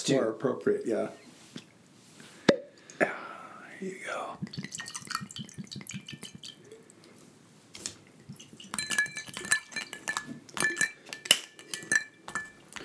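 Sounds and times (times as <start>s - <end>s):
speech: 0.0s - 1.3s, 3.8s - 4.6s
vodka trickling and splashing into a glass: 3.8s - 12.8s
bright glass clinks: 4.4s - 6.9s, 7.8s - 12.8s.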